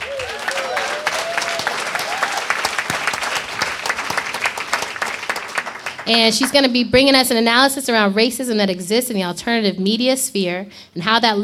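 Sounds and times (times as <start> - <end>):
voices cheering: 0.0 - 4.7
audience clapping: 0.0 - 6.7
speech: 6.1 - 11.4.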